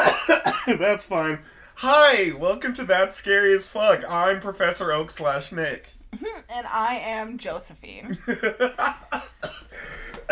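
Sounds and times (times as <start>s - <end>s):
person coughing: 0.0s - 0.8s, 8.6s - 10.3s
speech: 0.7s - 10.3s.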